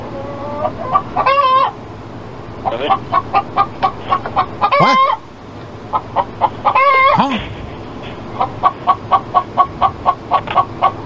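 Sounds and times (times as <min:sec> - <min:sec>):
chickens clucking: 0:00.0 - 0:01.8, 0:02.6 - 0:11.0
chicken squawking call: 0:04.4 - 0:05.3, 0:06.4 - 0:07.6.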